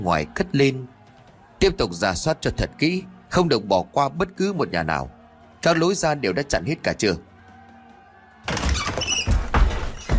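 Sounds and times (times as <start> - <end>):
speech: 0.0 - 0.9, 1.6 - 7.3
house door smashed open by a crowd: 8.5 - 10.1.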